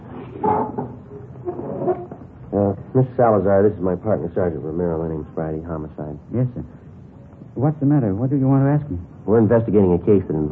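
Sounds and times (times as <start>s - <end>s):
wooden chairs being dragged across a floor and set in place: 0.0s - 2.3s
faint room hum: 0.0s - 10.4s
speech: 2.6s - 6.9s, 7.6s - 10.4s.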